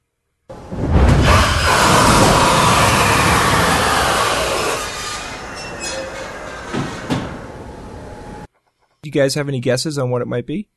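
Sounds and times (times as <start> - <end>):
space shuttle landing gear dropping with a mechanical rushing roar: 0.5 - 8.5
speech: 9.1 - 10.7.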